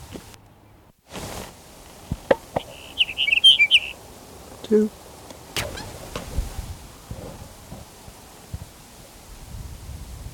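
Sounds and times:
soft hiss of noise: 0.0 - 10.3
sage sparrow song: 2.4 - 5.0
speech: 4.7 - 5.0.

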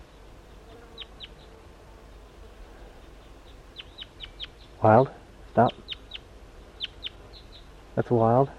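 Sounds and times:
faint hiss: 0.0 - 8.5
wild crossbill chip calls by a creek: 3.0 - 7.8
speech: 4.8 - 5.8, 8.0 - 8.5.

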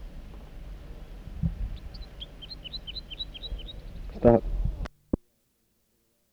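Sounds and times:
low rumble: 0.0 - 4.9
wild male bird singing from a dead snag on a hilltop: 0.0 - 4.9
speech: 4.2 - 4.5.

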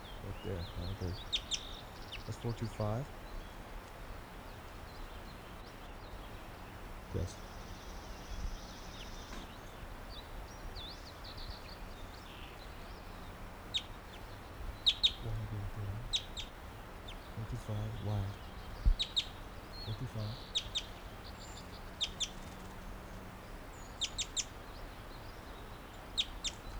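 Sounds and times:
wild bird chittering: 0.0 - 3.0, 13.7 - 24.6
low outdoor hum: 0.0 - 26.7
speech: 0.3 - 1.5, 2.3 - 3.2, 7.1 - 7.5, 17.7 - 18.5, 19.9 - 20.6.

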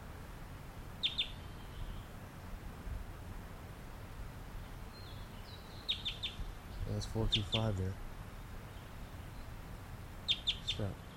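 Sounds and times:
steady outdoor hiss: 0.0 - 11.1
wild bird singing and calling in flight: 1.0 - 2.2, 4.6 - 11.1
speech: 7.0 - 8.1, 10.8 - 11.0.

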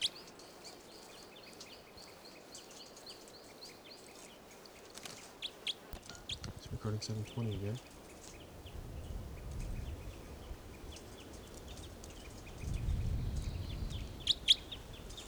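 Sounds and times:
birds with rapid high chirps: 0.0 - 15.2
sharp loud bird calls: 2.5 - 15.2
toucan calling: 5.4 - 15.2
low rumbling outdoor background: 6.0 - 15.2
speech: 6.8 - 8.0.

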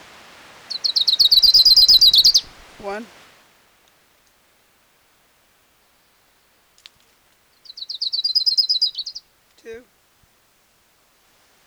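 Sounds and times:
orange-crowned warbler singing a high-pitched trill: 0.6 - 3.0, 7.6 - 9.8
speech: 2.8 - 3.2.

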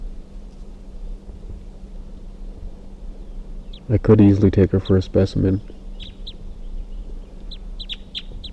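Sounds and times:
steady low hum: 0.0 - 8.5
captive caged crossbill giving sharp clipped chip calls: 3.2 - 3.9, 4.8 - 8.5
speech: 3.9 - 5.8.

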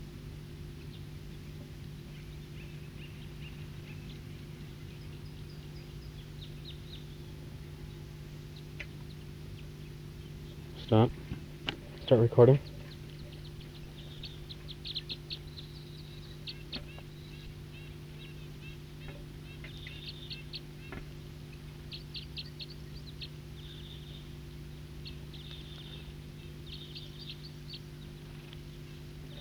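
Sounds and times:
steady low hum: 0.0 - 29.4
wild birds singing with high chirps and short trills: 0.0 - 29.4
speech: 10.9 - 11.2, 12.1 - 12.7.

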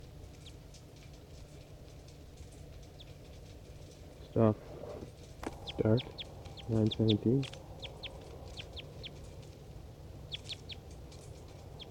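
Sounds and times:
low hum: 0.0 - 11.9
speech: 4.4 - 4.7, 5.8 - 7.6
wild bird call in quick high chirps: 5.4 - 9.4, 10.2 - 11.9.

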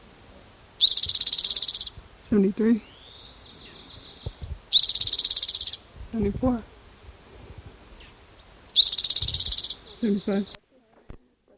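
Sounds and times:
bird call trilling from a field recording tape: 0.8 - 2.0, 2.8 - 5.9, 7.7 - 10.6
speech: 2.3 - 2.9, 6.1 - 6.7, 10.0 - 10.6.

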